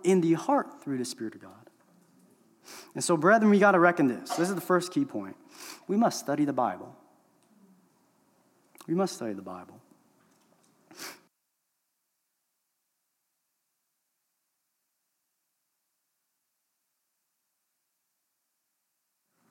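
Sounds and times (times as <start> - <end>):
speech: 0.0 - 1.6, 2.6 - 7.0, 8.9 - 9.8
hiss: 0.0 - 19.4
forceful nose blow: 10.9 - 11.3.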